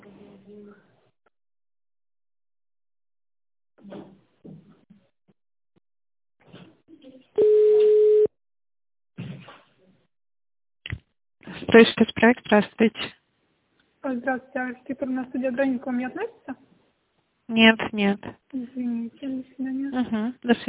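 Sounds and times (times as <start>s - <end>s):
speech: 3.8s - 4.6s, 11.6s - 13.2s, 14.0s - 16.7s, 17.5s - 20.6s
telephone ringback tone as a call is transferred: 7.4s - 8.3s.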